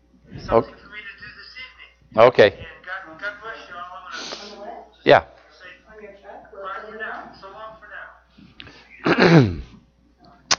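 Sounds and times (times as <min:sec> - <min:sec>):
speech: 0:00.5 - 0:00.8, 0:02.1 - 0:02.8, 0:05.0 - 0:05.3, 0:09.2 - 0:09.6
loud sneeze: 0:09.0 - 0:09.7.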